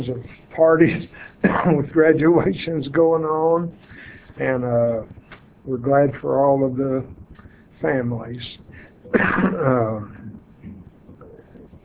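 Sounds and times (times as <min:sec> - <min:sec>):
speech: 0:00.0 - 0:07.2, 0:07.8 - 0:10.2
faint low rumbling: 0:00.0 - 0:11.8
harsh raspy cough from a man teaching a class: 0:01.1 - 0:01.9, 0:09.1 - 0:10.3
drawn-out throat clearing: 0:09.1 - 0:11.3.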